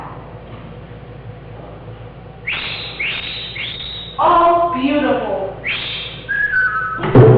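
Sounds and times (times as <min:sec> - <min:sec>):
jeweled mechanical bird whistling chirps: 0:02.4 - 0:04.5, 0:05.6 - 0:07.2.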